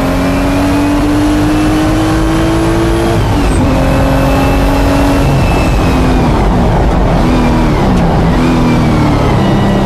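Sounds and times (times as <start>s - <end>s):
car engine revving while driving and accelerating: 0.0s - 9.8s.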